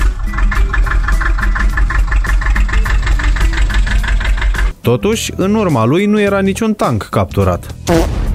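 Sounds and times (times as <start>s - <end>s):
tractor diesel engine idling: 0.0s - 4.8s
speech: 4.9s - 8.2s.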